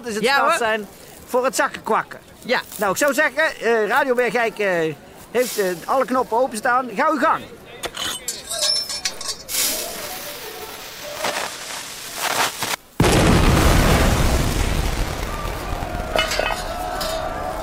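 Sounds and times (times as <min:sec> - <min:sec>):
speech: 0:00.0 - 0:07.6
metallic clinking: 0:07.8 - 0:09.7
carbide blast from a milk churn: 0:13.0 - 0:17.5.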